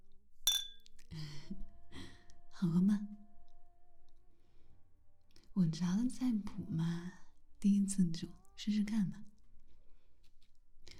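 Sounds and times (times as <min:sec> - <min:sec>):
glasses clinking in a toast: 0:00.5 - 0:00.9
speech: 0:01.1 - 0:01.7, 0:02.6 - 0:03.2, 0:05.6 - 0:09.3.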